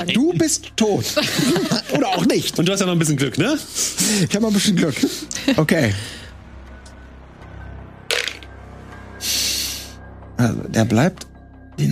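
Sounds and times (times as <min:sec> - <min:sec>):
speech: 0:00.0 - 0:06.2, 0:10.4 - 0:11.8
laughter: 0:01.0 - 0:02.6
dice clattering onto a hard tabletop: 0:08.1 - 0:08.5.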